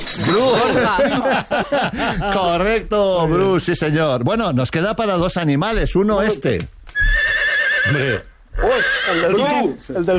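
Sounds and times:
laughter: 0:00.2 - 0:02.9
speech: 0:00.3 - 0:07.2, 0:07.8 - 0:10.1
horse neighing in a high quavering whinny: 0:06.9 - 0:09.8.

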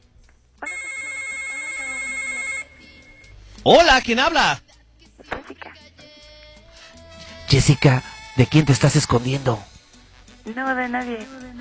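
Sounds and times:
telephone ringing with an incoming call: 0:00.6 - 0:03.3
speech: 0:03.6 - 0:04.6, 0:07.6 - 0:09.7, 0:10.4 - 0:11.5.

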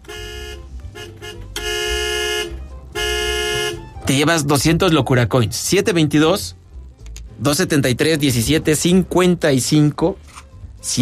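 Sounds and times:
car horns honking in traffic: 0:00.0 - 0:04.1
speech: 0:04.1 - 0:06.6, 0:07.4 - 0:10.9.

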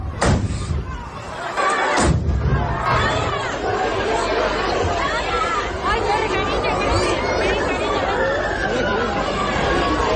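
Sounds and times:
dense outdoor crowd shouting and clamoring at a festival: 0:00.0 - 0:10.1
festival rocket launch detonations in a town square: 0:00.1 - 0:00.8, 0:01.9 - 0:02.9.

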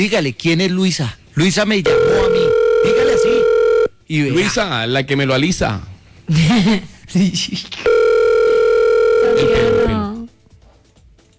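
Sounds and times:
speech: 0:00.0 - 0:03.0, 0:04.1 - 0:07.9
telephone ringing unanswered: 0:01.9 - 0:03.9, 0:07.9 - 0:10.0.

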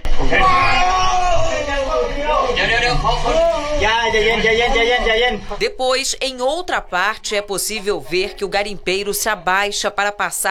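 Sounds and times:
laughter: 0:00.0 - 0:10.4
voices shouting in an echoing cave: 0:00.0 - 0:10.4
speech: 0:00.2 - 0:00.6, 0:02.9 - 0:10.4
trapped miner screaming in a flooded cave: 0:00.2 - 0:05.4.

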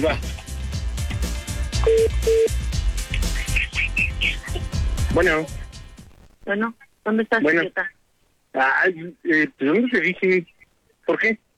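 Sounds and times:
speech: 0:00.0 - 0:00.4, 0:05.2 - 0:05.6, 0:06.5 - 0:10.5, 0:11.1 - 0:11.4
rhythmic clicking: 0:00.0 - 0:06.4
telephone keypad beeps while dialing: 0:01.8 - 0:02.5.

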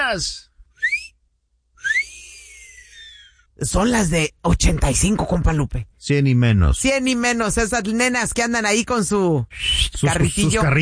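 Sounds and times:
speech: 0:00.1 - 0:00.5, 0:03.6 - 0:10.8
human whistles: 0:00.8 - 0:01.2, 0:01.8 - 0:03.3.

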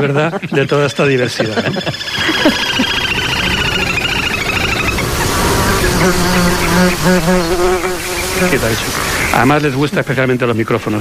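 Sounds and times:
speech: 0:00.0 - 0:02.9, 0:06.0 - 0:10.9
laughter: 0:00.0 - 0:06.9
mosquitoes buzzing around the microphone: 0:01.8 - 0:09.6.

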